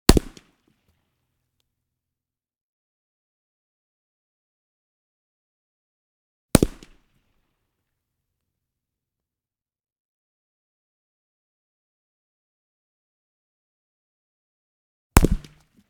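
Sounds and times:
bullet hitting watermelon: 0.1s - 0.4s, 6.6s - 7.0s, 15.2s - 15.6s.

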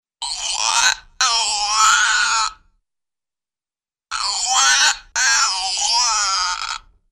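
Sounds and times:
medium short cartoon duck quack-like creaks in pairs: 0.2s - 2.7s, 4.1s - 7.0s.

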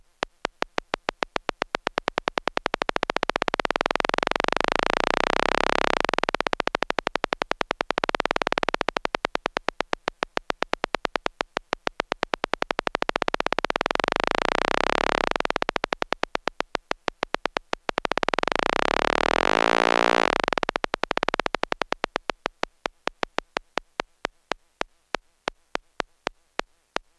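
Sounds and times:
electronic drips: 0.2s - 27.1s.

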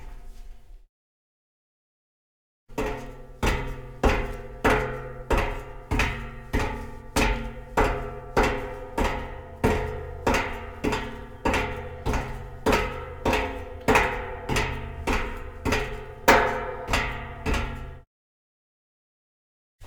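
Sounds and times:
foley footsteps on undampened metal grate: 3.0s - 18.0s.

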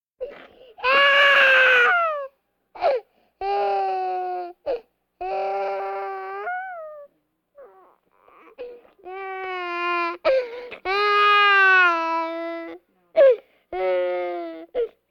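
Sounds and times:
baby moaning: 0.2s - 14.9s
breathing vocal effect: 0.4s - 0.8s, 2.8s - 3.4s, 10.3s - 10.8s, 13.4s - 13.7s.

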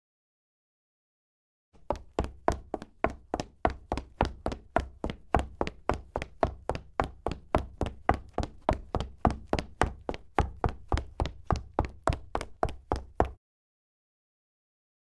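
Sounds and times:
high heels footsteps on hard wood: 1.8s - 13.4s.

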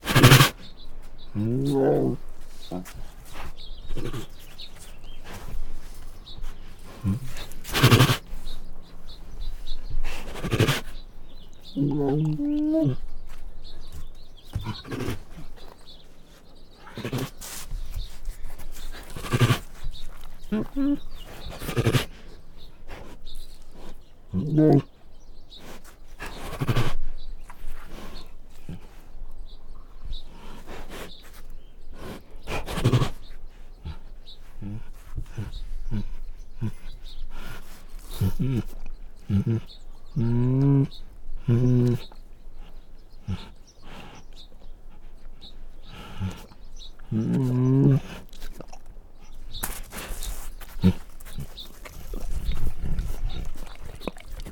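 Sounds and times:
male Bengal tiger growling and snorting: 0.0s - 16.0s, 16.8s - 25.0s, 25.8s - 29.1s, 32.4s - 54.5s.

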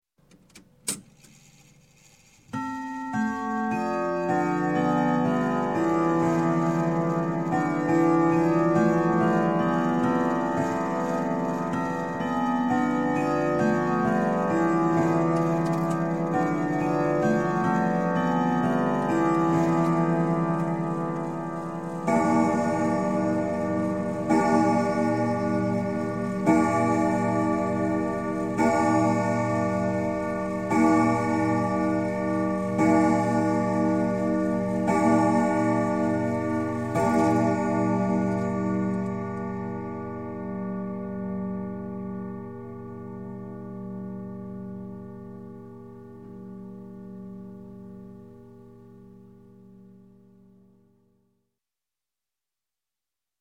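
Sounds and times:
grandfather clock chime: 2.5s - 49.3s.

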